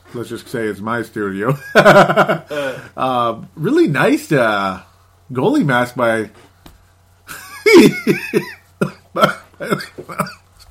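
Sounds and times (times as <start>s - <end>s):
speech: 0.1s - 6.5s, 7.8s - 8.6s, 9.2s - 10.3s
person with a dry mouth coughing in short harsh bursts: 7.7s - 10.4s.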